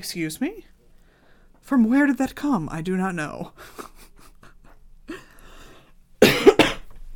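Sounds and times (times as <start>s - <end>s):
speech: 0.0s - 0.8s, 1.6s - 4.0s
person coughing: 6.2s - 6.9s.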